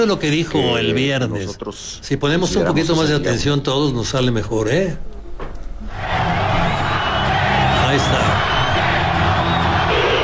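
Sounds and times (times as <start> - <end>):
speech: 0.0 - 6.1, 7.9 - 8.5
stadium crowd roaring: 5.8 - 10.2.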